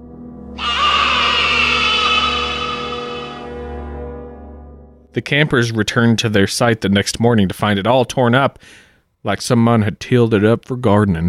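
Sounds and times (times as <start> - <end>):
goat screaming: 0.6 - 3.7
speech: 5.2 - 11.2.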